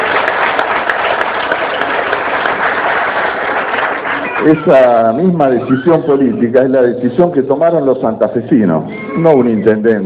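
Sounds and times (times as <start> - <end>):
audience applause at a public education event: 0.0 - 5.3
speech: 4.4 - 10.0.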